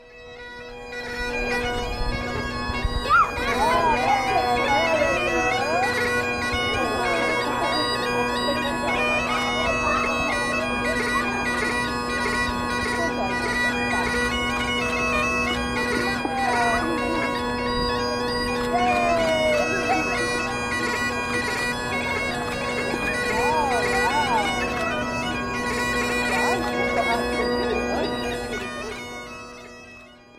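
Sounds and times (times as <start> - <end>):
cornamusa bagpipe: 0.0 - 30.3
laughter: 3.5 - 6.0, 6.6 - 11.6, 16.1 - 17.4, 18.6 - 21.3, 21.9 - 25.3.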